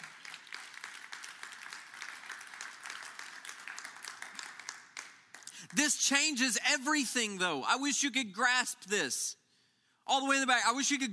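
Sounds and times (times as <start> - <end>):
crowd clapping hands in applause: 0.0 - 6.1
speech: 5.7 - 9.4, 10.1 - 11.1.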